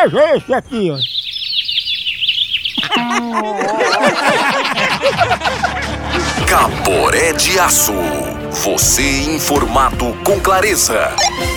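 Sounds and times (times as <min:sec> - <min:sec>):
laughter: 0:00.0 - 0:01.1, 0:02.8 - 0:07.1
speech: 0:00.0 - 0:01.2, 0:02.9 - 0:11.5
sparrow chirping: 0:00.0 - 0:03.0, 0:11.1 - 0:11.5
chorus of lower tonal bird calls and warbles: 0:00.3 - 0:03.1.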